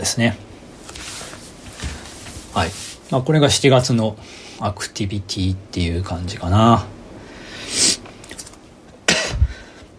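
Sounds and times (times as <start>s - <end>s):
speech: 0.0s - 0.5s, 2.6s - 7.0s
person coughing: 9.1s - 9.6s.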